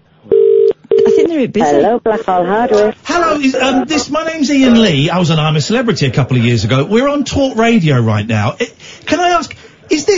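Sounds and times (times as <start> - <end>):
telephone ringing tone through the handset: 0.3 - 1.3
speech: 1.3 - 10.1.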